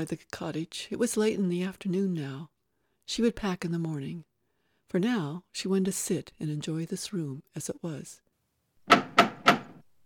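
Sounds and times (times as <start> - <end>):
speech: 0.0 - 2.5, 3.1 - 4.3, 4.9 - 8.2
firm knocking on a door: 8.9 - 9.8.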